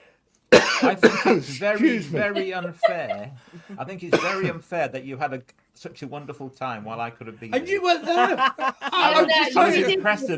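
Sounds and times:
person coughing: 0:00.5 - 0:01.5, 0:04.1 - 0:04.6
speech: 0:00.8 - 0:10.3
laughter: 0:00.9 - 0:04.6, 0:07.6 - 0:10.3.

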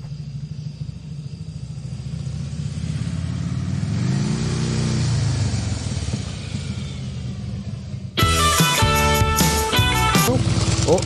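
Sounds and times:
motorcycle engine rumbling and revving: 0:00.0 - 0:11.0
loud music: 0:08.2 - 0:11.0.

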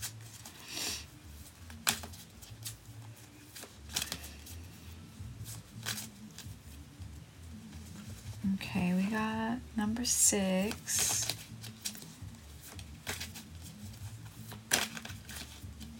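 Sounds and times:
deck of reading cards being shuffled: 0:00.0 - 0:06.7, 0:10.0 - 0:15.9
speech: 0:08.7 - 0:11.1.

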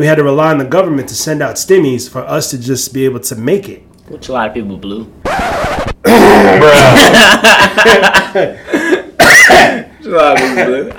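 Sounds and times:
speech: 0:00.0 - 0:08.9, 0:09.5 - 0:10.9
brief throaty vocal sounds: 0:05.8 - 0:07.1
laughter: 0:06.1 - 0:09.2
person coughing harshly: 0:08.8 - 0:10.9.

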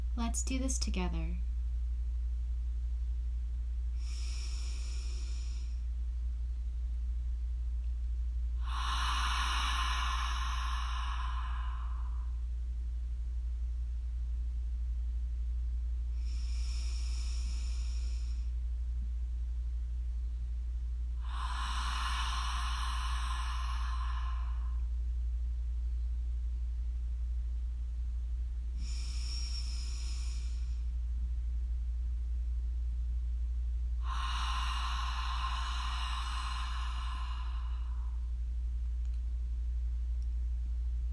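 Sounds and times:
steady low hum: 0:00.0 - 0:41.1
speech: 0:00.2 - 0:01.5
slow airy breaths: 0:03.9 - 0:06.1, 0:07.8 - 0:12.6, 0:16.0 - 0:18.7, 0:21.1 - 0:25.0, 0:28.7 - 0:31.0, 0:34.0 - 0:38.6.

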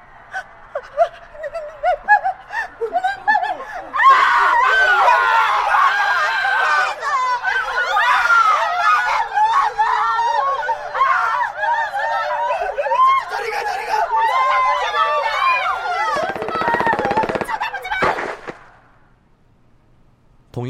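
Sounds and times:
laughter: 0:00.2 - 0:18.1
person breathing in short panicked gasps and whimpers: 0:00.3 - 0:04.0.

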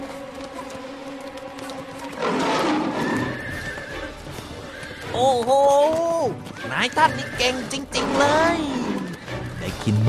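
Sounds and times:
horse whinnying: 0:02.2 - 0:09.8
speech: 0:06.8 - 0:08.8, 0:09.8 - 0:10.0.

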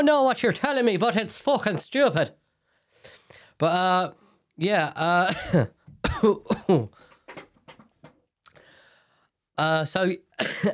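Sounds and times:
speech: 0:00.0 - 0:02.4, 0:03.6 - 0:07.1, 0:09.6 - 0:10.7
person coughing: 0:05.2 - 0:07.5, 0:10.4 - 0:10.7
throat clearing: 0:05.3 - 0:07.0.

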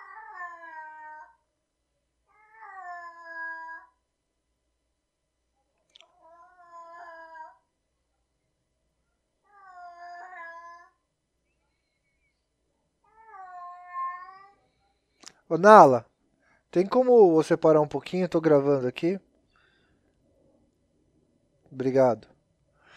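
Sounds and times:
cat in heat yowling: 0:00.0 - 0:01.4, 0:02.3 - 0:04.0, 0:06.1 - 0:07.6, 0:09.5 - 0:11.0, 0:13.1 - 0:14.6
speech: 0:15.5 - 0:16.1, 0:16.7 - 0:19.3, 0:21.7 - 0:22.3.

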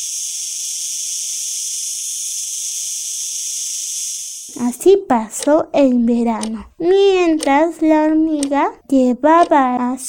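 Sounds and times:
cicada buzzing: 0:00.0 - 0:04.8
speech: 0:04.5 - 0:10.0.

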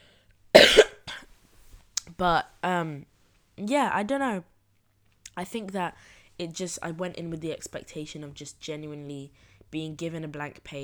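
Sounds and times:
person coughing: 0:00.6 - 0:01.3
speech: 0:02.2 - 0:04.5, 0:05.4 - 0:10.8.

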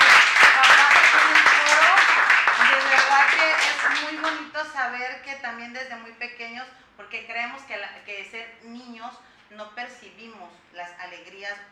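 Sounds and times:
crowd of many hands clapping: 0:00.0 - 0:04.5
speech: 0:03.5 - 0:11.7.

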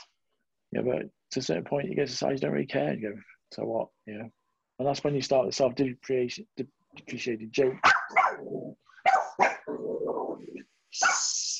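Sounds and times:
speech: 0:00.7 - 0:08.6, 0:09.4 - 0:11.5
dog barking with high yips: 0:07.8 - 0:09.7, 0:11.0 - 0:11.4.

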